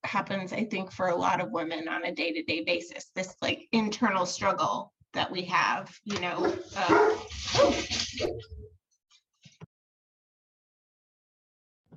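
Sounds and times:
speech: 0:00.1 - 0:08.7
dogs barking: 0:06.2 - 0:08.5.

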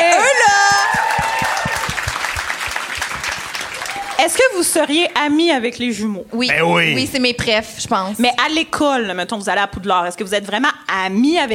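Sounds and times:
audience applause: 0:00.4 - 0:04.6
speech: 0:04.5 - 0:11.5.

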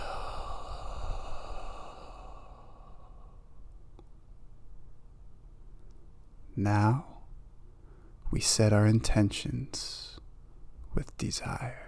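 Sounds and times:
person breathing slowly in and out: 0:00.0 - 0:03.7
speech: 0:06.6 - 0:07.1, 0:08.3 - 0:10.1, 0:11.0 - 0:11.8.

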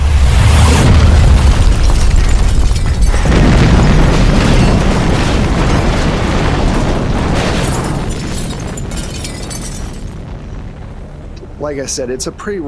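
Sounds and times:
heavy explosions with deep booming blasts: 0:00.0 - 0:12.2
sustained roaring rumble and crackle: 0:00.0 - 0:12.6
speech: 0:11.7 - 0:12.6.

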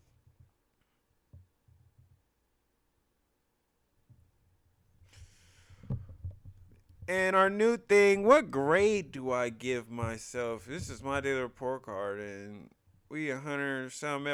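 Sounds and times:
faint bumps: 0:05.1 - 0:12.0
room noise: 0:05.1 - 0:14.3
speech: 0:07.1 - 0:14.3.

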